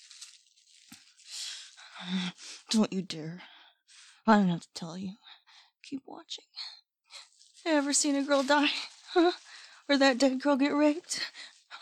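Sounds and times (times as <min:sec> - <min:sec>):
plastic bag crinkling: 0:00.0 - 0:02.7, 0:07.1 - 0:11.8
speech: 0:02.0 - 0:03.5, 0:04.2 - 0:05.2, 0:05.9 - 0:06.7, 0:07.6 - 0:11.5.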